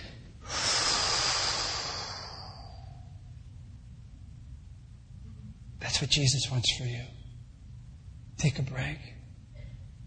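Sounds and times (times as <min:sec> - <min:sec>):
big deep breath during a church service: 0:00.0 - 0:03.3
speech: 0:05.9 - 0:07.2, 0:08.4 - 0:09.2.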